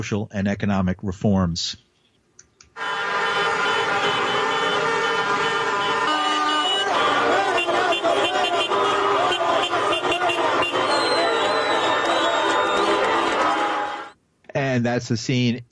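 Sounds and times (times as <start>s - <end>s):
speech: 0.0s - 1.8s, 14.8s - 15.7s
car horns honking: 2.8s - 14.2s
dense street protest crowd shouting: 2.8s - 14.2s.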